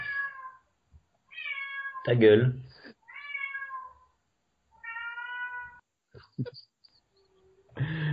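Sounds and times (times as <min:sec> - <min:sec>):
cat meowing loudly: 0:00.0 - 0:00.6, 0:01.3 - 0:02.1, 0:03.0 - 0:04.1, 0:04.8 - 0:05.8
speech: 0:02.0 - 0:02.7, 0:06.4 - 0:06.7.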